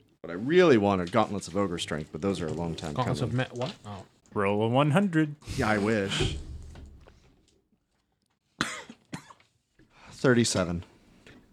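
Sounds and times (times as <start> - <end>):
speech: 0.3 - 6.5, 10.2 - 10.9
person coughing: 8.6 - 9.5
throat clearing: 8.6 - 9.6.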